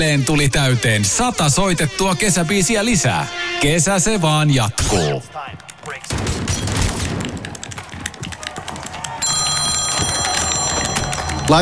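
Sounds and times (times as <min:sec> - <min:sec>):
speech: 0:00.0 - 0:06.6, 0:11.5 - 0:11.6
booming bursts: 0:04.7 - 0:07.7
mobile phone electronic ringtone: 0:09.2 - 0:11.6.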